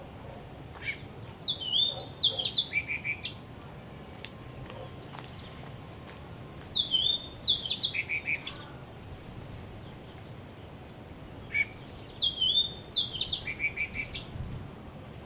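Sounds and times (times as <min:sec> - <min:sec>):
bird song: 0:00.8 - 0:03.4, 0:04.1 - 0:08.7, 0:09.6 - 0:14.3.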